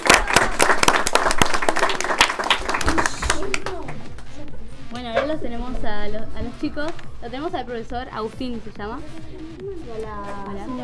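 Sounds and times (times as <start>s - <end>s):
audience applause in a radio studio: 0.0s - 4.0s
speech: 6.1s - 10.8s.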